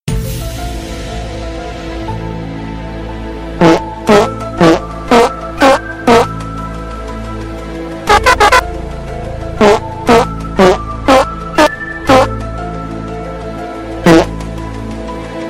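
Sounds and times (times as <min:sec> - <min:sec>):
trumpet fart doot: 0:03.6 - 0:06.3, 0:08.1 - 0:08.6, 0:09.6 - 0:12.4, 0:14.0 - 0:14.3.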